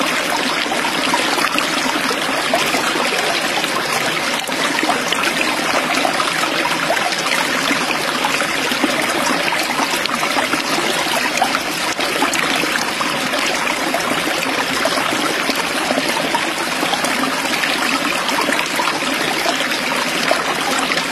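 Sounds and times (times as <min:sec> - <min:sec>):
flowing water: 0:00.0 - 0:21.1.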